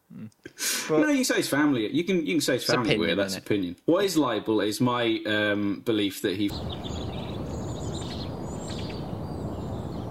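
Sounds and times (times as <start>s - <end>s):
speech: 0.3s - 7.0s
birds chirping and trilling as censoring sound: 6.5s - 10.0s.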